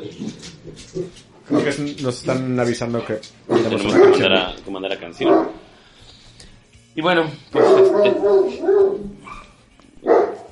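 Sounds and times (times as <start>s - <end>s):
dog barks: 1.0s - 1.8s, 3.5s - 4.4s, 5.2s - 5.6s, 7.6s - 10.5s
speech: 1.0s - 5.6s, 7.0s - 9.2s.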